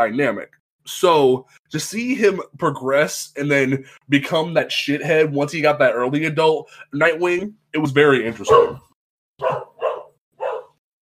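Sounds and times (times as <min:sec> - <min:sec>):
speech: 0:00.0 - 0:09.6
dog barking: 0:08.5 - 0:08.8, 0:09.4 - 0:10.8.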